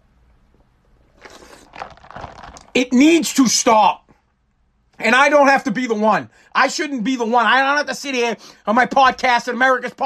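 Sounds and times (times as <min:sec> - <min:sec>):
person slurping a drink: 0:00.5 - 0:02.7
speech: 0:02.8 - 0:04.0, 0:05.0 - 0:10.0.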